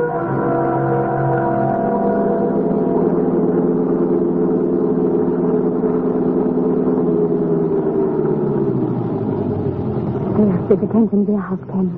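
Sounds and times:
car engine running with a low droning hum: 0.2 - 11.9.

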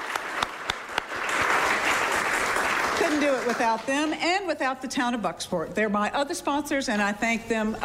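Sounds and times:
audience applause: 0.0 - 3.9
speech: 3.1 - 7.8.

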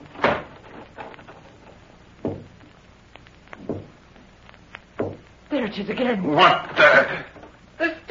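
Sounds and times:
door swinging shut with a solid thud: 0.1 - 0.6, 2.2 - 2.6, 3.6 - 4.0, 5.0 - 5.3
soft knocks on a door: 2.2 - 2.6, 3.6 - 4.0, 5.0 - 5.2
speech: 5.5 - 7.3.

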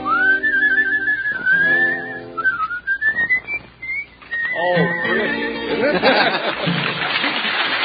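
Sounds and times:
person whistling a melodic tune: 0.0 - 5.5
faint harmonic backing: 0.0 - 7.0
laughter: 5.7 - 7.7.

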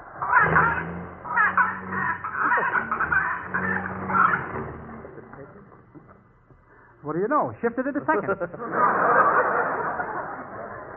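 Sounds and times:
laughter: 0.0 - 6.2, 7.9 - 10.9
heavy pigeon clucking and squawking while struggling to take off: 0.2 - 5.0
speech: 7.0 - 9.3.

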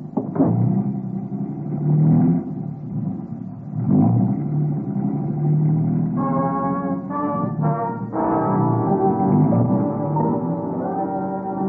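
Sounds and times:
car engine rumbling and revving while driving through downtown Bangkok streets: 0.0 - 11.6
horn-like blasts: 6.2 - 11.6.

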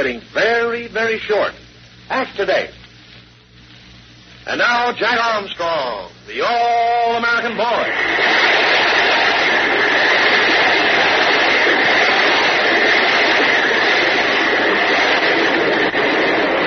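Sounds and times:
speech: 0.0 - 2.8, 4.5 - 8.4
tremendous waterspout whirling over the ocean: 6.3 - 16.6.

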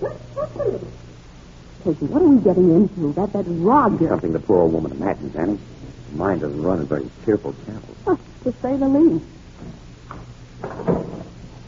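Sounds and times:
speech: 1.8 - 9.4
door opening with a heavy rattling clunk: 10.6 - 11.4.

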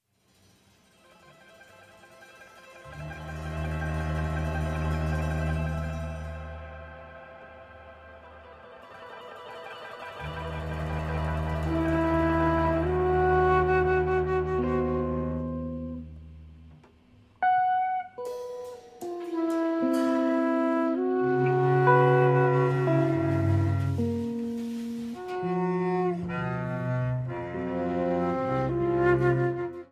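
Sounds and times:
string quartet playing a fourth movement: 2.8 - 8.5, 10.2 - 16.2, 19.0 - 29.9.

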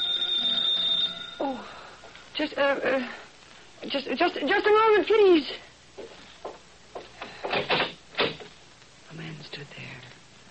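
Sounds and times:
doorbell ringing: 0.0 - 1.4
speech: 2.4 - 6.1.

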